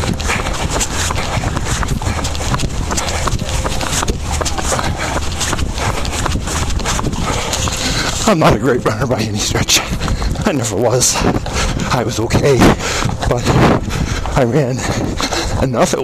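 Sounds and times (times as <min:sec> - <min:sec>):
busy outdoor city noise: 0:00.0 - 0:16.0
horse carriage hooves clip-clopping on a street: 0:00.0 - 0:16.0
speech: 0:08.3 - 0:16.0.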